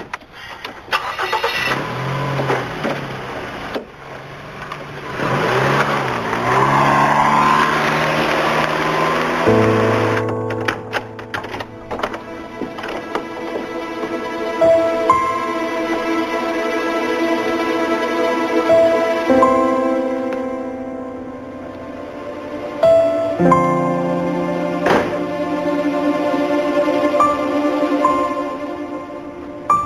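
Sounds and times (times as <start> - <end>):
car engine starting and running as the car drives off: 0.4 - 29.8
knocks and clicks: 10.1 - 14.2.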